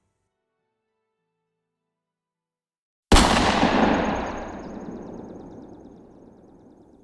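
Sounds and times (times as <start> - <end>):
loud gunshot: 3.1 - 6.4
long rolling echo of a gunshot: 3.1 - 7.0.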